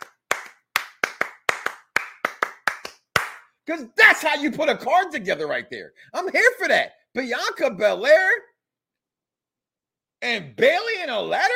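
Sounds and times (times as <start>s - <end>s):
single person clapping hands: 0.0s - 3.5s
speech: 3.7s - 8.5s, 10.2s - 11.5s.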